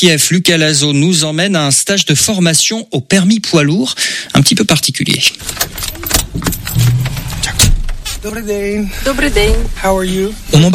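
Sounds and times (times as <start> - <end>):
speech: 0.0 - 10.7
clunks and rattles inside the cab of a large truck: 5.4 - 8.1.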